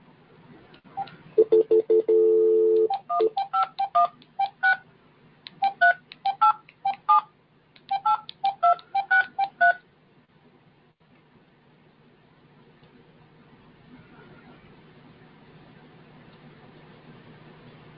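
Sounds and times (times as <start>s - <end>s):
telephone keypad tones while dialing into a conference call: 1.0s - 4.8s, 5.6s - 7.2s, 7.9s - 9.8s.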